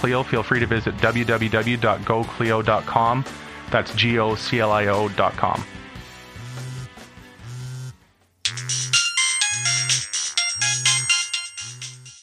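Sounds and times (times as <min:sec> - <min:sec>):
speech: 0:00.0 - 0:05.8
phone ringtone with bright chiming tones and a low pulsing beat: 0:08.5 - 0:12.2.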